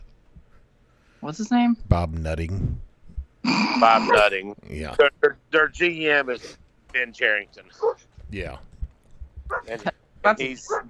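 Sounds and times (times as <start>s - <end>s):
speech: 1.2s - 2.9s, 3.5s - 8.7s, 9.5s - 10.8s
dog barking and yelping: 7.8s - 8.0s, 9.5s - 9.8s, 10.6s - 10.8s.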